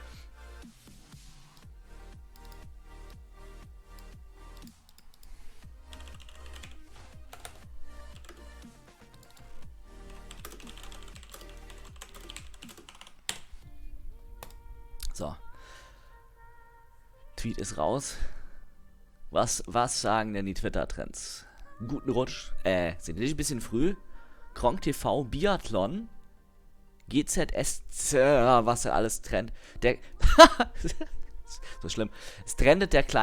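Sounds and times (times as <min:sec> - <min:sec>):
low hum: 0:01.7 - 0:33.2
computer keyboard typing: 0:02.3 - 0:02.7, 0:04.0 - 0:13.5
speech: 0:15.2 - 0:15.4, 0:17.4 - 0:18.4, 0:19.3 - 0:26.2, 0:27.1 - 0:33.2.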